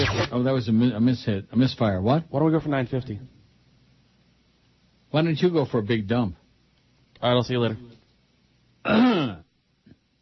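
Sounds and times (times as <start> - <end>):
speech: 0.0 - 3.4, 5.1 - 6.4, 7.2 - 7.9, 8.8 - 9.4
phlegmy throat clearing: 8.8 - 9.5.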